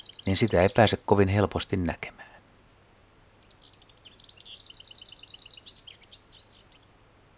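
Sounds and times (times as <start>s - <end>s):
lesser whitethroat singing: 0.0s - 1.5s, 3.3s - 7.3s
speech: 0.2s - 2.2s.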